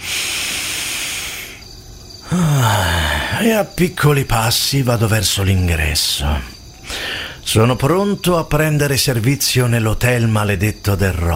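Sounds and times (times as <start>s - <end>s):
deep breath filling the lungs: 0.0s - 3.4s, 6.8s - 7.4s
speech: 2.3s - 6.6s, 7.5s - 11.3s.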